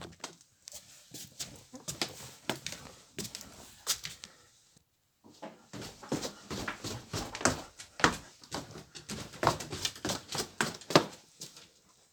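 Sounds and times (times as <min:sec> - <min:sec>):
wooden stairs sounds: 0:05.3 - 0:11.2.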